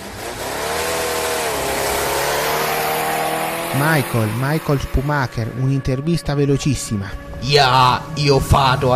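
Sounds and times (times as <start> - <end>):
race car engines revving in the pits: 0.0 - 8.9
speech: 3.8 - 8.9.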